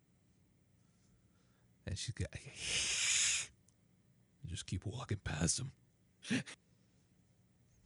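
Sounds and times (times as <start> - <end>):
speech: 1.8 - 3.0, 4.5 - 6.6
person imitating an angry cat's hiss: 2.4 - 3.6.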